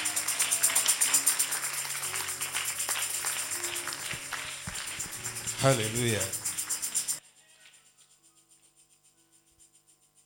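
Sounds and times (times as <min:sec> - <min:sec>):
crowd clapping: 0:00.0 - 0:07.2
speech: 0:05.6 - 0:06.4.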